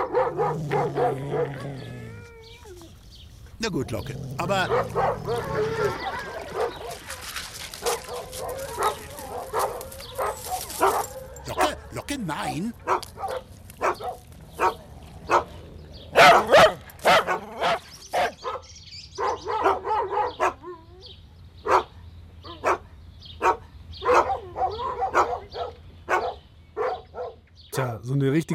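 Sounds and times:
dog whining yelps: 0.0s - 7.2s, 7.8s - 11.9s, 12.8s - 18.6s, 23.4s - 27.4s
dog barking and yipping: 0.0s - 15.5s, 16.1s - 20.7s, 21.7s - 21.9s, 23.4s - 27.4s
speech: 3.6s - 6.3s.

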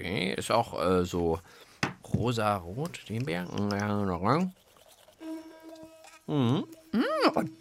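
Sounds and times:
speech: 0.0s - 4.6s, 6.3s - 7.5s
electric toothbrush buzzing: 4.6s - 7.5s
person making a sliding hummed sound: 6.3s - 7.5s.

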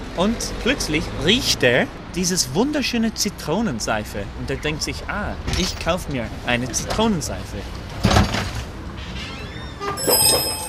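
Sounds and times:
speech: 0.2s - 7.8s
shop door swinging open: 7.9s - 10.6s.

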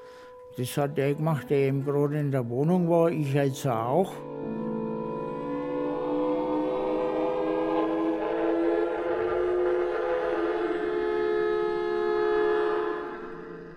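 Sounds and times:
speech: 0.6s - 4.3s
air raid siren wailing: 4.0s - 13.7s.

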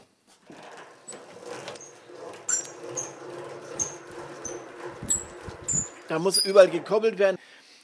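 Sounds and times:
old self-built hand-cranked honey extractor turning with high-pitched squeaks: 0.5s - 7.2s
speech: 6.1s - 7.4s.

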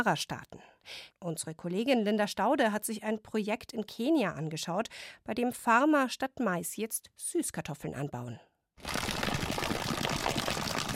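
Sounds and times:
speech: 0.0s - 9.0s
water gushing from a plastic tank onto fields: 8.8s - 10.9s.

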